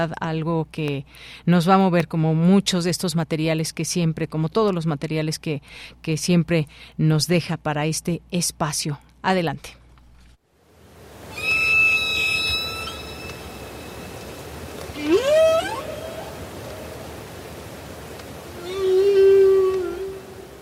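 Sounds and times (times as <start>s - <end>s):
speech: 0.0s - 9.8s
whale song: 11.2s - 14.3s, 14.9s - 17.4s, 18.4s - 20.6s.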